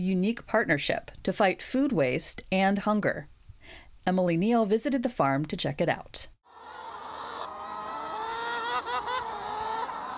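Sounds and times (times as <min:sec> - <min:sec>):
speech: 0:00.0 - 0:06.3
flock of chickens squawking and clucking while pecking at lettuce and berries: 0:06.5 - 0:10.1.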